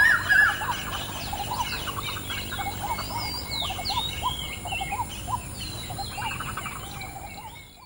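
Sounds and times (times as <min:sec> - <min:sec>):
waterbirds calling together at dawn: 0:00.0 - 0:05.5
constant hiss: 0:00.0 - 0:07.8.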